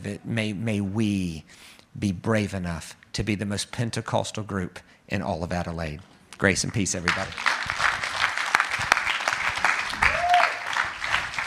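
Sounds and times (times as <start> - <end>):
speech: 0.0 - 7.5
crowd applauding: 7.1 - 11.4.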